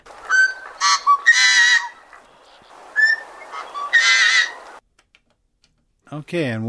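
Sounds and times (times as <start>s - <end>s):
songbird singing harsh raspy buzzy song: 0.1s - 4.8s.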